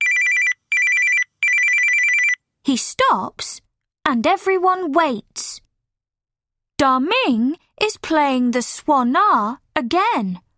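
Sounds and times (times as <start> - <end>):
telephone ringing with electronic trilling: 0.0 - 2.4
speech: 2.7 - 5.6, 6.8 - 10.4.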